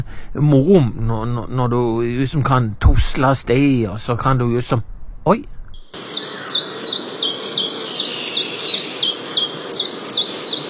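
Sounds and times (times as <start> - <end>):
speech: 0.3 - 6.4
common chiffchaff singing: 5.8 - 10.6.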